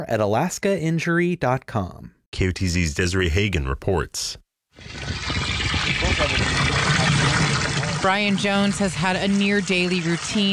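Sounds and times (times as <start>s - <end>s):
speech: 0.0s - 5.4s, 6.0s - 10.5s
water gushing into a 5-gallon bucket at a water treatment plant in Alaska: 4.8s - 10.5s.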